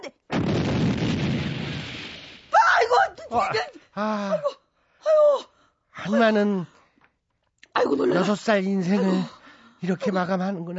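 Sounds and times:
firecracker exploding with a loud rumbling boom: 0.3s - 2.6s
speech: 3.3s - 4.6s, 6.1s - 6.7s, 7.9s - 10.7s.

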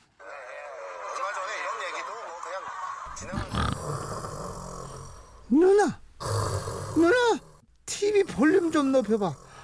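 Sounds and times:
speech: 3.2s - 3.8s, 8.4s - 9.4s
person imitating loud snoring: 3.2s - 9.6s.

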